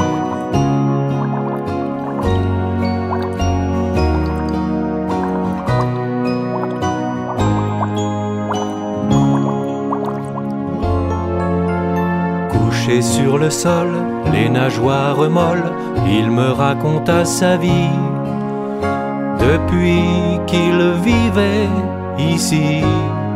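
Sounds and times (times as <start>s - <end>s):
water bubbles and drips popping and gurgling: 0.0s - 11.4s
steady tonal musical background: 0.0s - 12.8s
speech: 13.2s - 18.1s, 18.8s - 23.2s.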